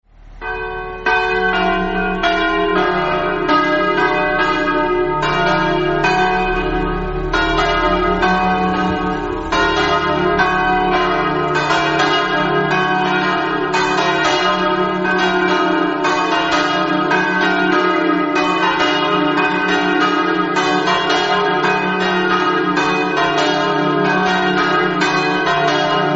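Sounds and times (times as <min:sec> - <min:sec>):
bells ringing in Precenicco: 0:00.4 - 0:26.1.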